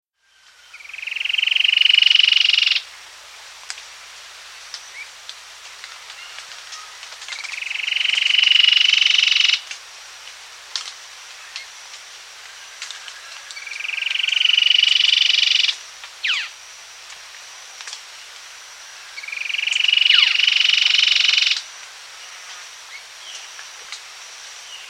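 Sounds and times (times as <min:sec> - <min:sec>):
Cherrie's Antwren calling in South America: 0:00.7 - 0:02.8, 0:07.4 - 0:09.6, 0:13.6 - 0:16.5, 0:19.2 - 0:21.6.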